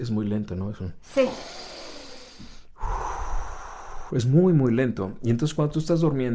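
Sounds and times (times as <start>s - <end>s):
speech: 0.0s - 1.7s, 4.1s - 6.3s
person drawing a long deep breath: 1.1s - 4.2s.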